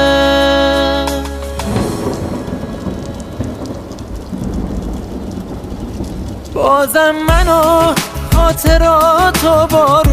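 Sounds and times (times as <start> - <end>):
steady dense rain pouring with low rumbling undertone: 0.0 - 10.1
sustained musical tone: 1.3 - 4.5
speech: 6.7 - 10.1.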